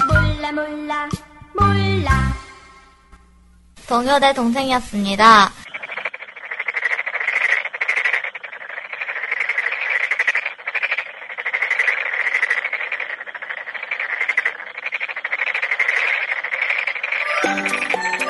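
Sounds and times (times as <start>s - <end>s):
speech: 0.5s - 2.4s, 3.9s - 5.6s
dense chorus of frogs croaking with rapid overlapping trills: 5.2s - 18.2s.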